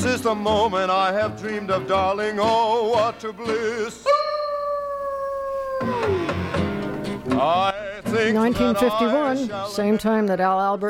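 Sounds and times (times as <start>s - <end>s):
speech: 0.0s - 4.2s, 7.4s - 10.8s
musical backing in a song: 0.0s - 4.3s, 5.8s - 10.8s
dog howling in a song: 4.1s - 6.4s.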